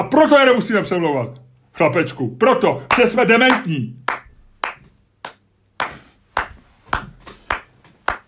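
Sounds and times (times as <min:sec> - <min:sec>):
speech: 0:00.0 - 0:04.0
single person clapping hands: 0:02.9 - 0:08.2.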